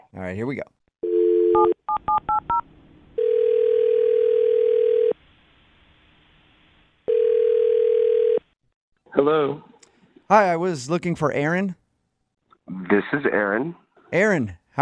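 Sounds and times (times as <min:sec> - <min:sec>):
speech: 0:00.1 - 0:00.8, 0:01.5 - 0:03.4, 0:09.2 - 0:09.7, 0:10.3 - 0:11.8, 0:12.7 - 0:14.8
telephone dial tone: 0:01.0 - 0:01.8, 0:03.2 - 0:05.2, 0:07.1 - 0:08.5.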